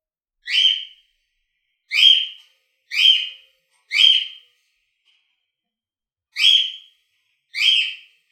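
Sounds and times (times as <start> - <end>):
Corella giving short screechy calls at home: 0.5 - 0.9, 1.9 - 4.4, 6.4 - 6.9, 7.6 - 8.1.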